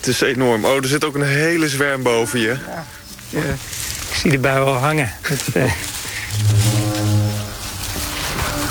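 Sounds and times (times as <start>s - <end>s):
speech: 0.0s - 6.8s
faint outdoor wind: 0.0s - 8.6s
deep horn blast, possibly a foghorn: 6.3s - 8.6s.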